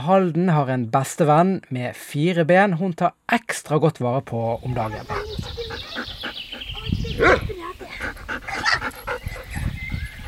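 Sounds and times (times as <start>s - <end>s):
speech: 0.0s - 6.1s, 7.2s - 8.4s
pet dog panting: 4.7s - 10.2s
pet dog barking: 7.2s - 7.6s, 8.5s - 8.9s.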